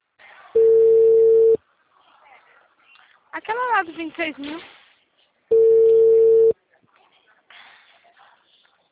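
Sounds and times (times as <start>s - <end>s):
ringback tone from an outgoing telephone call: 0.6s - 1.6s, 5.5s - 6.5s
speech: 3.4s - 4.8s.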